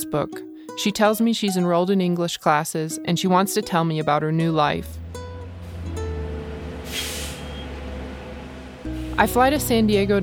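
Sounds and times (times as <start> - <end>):
speech: 0.0 - 5.1, 9.2 - 10.2
city bus engine rumble at a bus stop in San Diego: 4.1 - 10.2
city bus air-brake hiss: 6.7 - 9.2.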